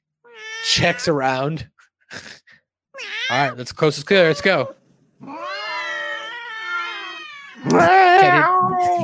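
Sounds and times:
cats yowling and meowing: 0:00.3 - 0:01.2, 0:03.0 - 0:09.0
speech: 0:00.7 - 0:02.4, 0:03.0 - 0:05.5, 0:07.6 - 0:09.0.

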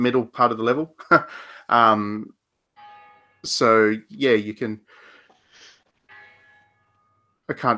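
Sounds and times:
speech: 0:00.0 - 0:02.4, 0:03.4 - 0:05.0, 0:07.5 - 0:07.7
church bell tolling: 0:02.8 - 0:04.6, 0:06.1 - 0:07.7.

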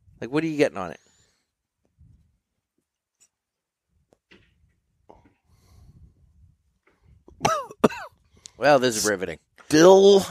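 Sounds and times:
speech: 0:00.2 - 0:01.0, 0:08.6 - 0:10.3
quiet breathing: 0:01.0 - 0:01.7, 0:05.1 - 0:07.2
person coughing after retrohaling cigar smoke: 0:07.4 - 0:08.1.

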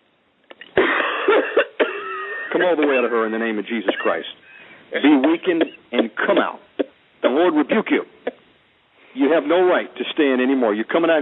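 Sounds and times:
woman coughing hard and harshly: 0:00.8 - 0:02.6, 0:03.9 - 0:04.3, 0:05.3 - 0:06.5
speech: 0:02.6 - 0:06.7, 0:07.3 - 0:08.2, 0:09.2 - 0:11.2.

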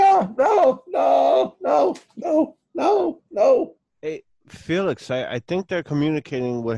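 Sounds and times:
man's voice imitating a man shrieking: 0:00.0 - 0:03.8
speech: 0:04.7 - 0:06.7.

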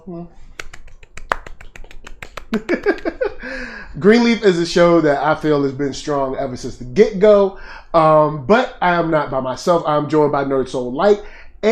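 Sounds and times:
speech: 0:00.0 - 0:00.6, 0:02.5 - 0:11.7
light golf clapping: 0:00.6 - 0:03.1
laughter: 0:02.5 - 0:03.6.

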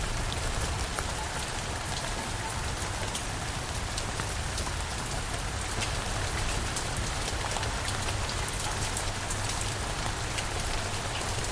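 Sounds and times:
rain shower on leaves and roofs on a wet night in the Kent countryside: 0:00.0 - 0:11.5.

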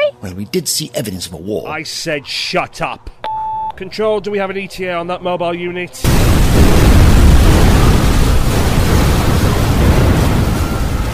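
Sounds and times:
speech: 0:00.2 - 0:03.2, 0:03.8 - 0:06.7
continuous roar of explosions with low rumbling and crackling blasts: 0:06.0 - 0:11.1.

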